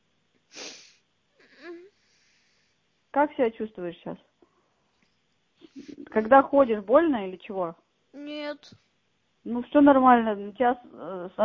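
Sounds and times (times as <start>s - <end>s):
boy sniffling over a phone line: 0.5s - 2.7s, 5.6s - 6.2s
boy tearful whimper over a phone line: 0.6s - 2.2s, 5.7s - 6.3s, 8.2s - 8.8s
speech: 3.2s - 4.3s, 6.1s - 11.4s.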